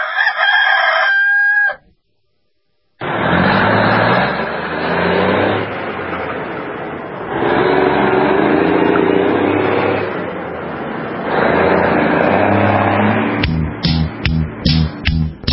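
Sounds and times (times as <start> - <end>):
rooster crowing: 0.0 - 1.9
steady noisy rumble: 3.0 - 15.5.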